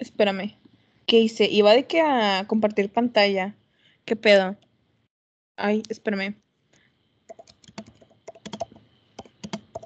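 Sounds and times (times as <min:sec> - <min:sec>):
speech: 0:00.2 - 0:04.6, 0:05.6 - 0:06.4
typing a chat message on a computer keyboard: 0:07.3 - 0:09.8.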